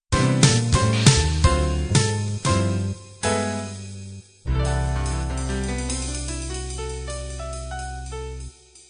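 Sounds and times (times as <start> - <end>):
bop sound: 0.2 - 6.4.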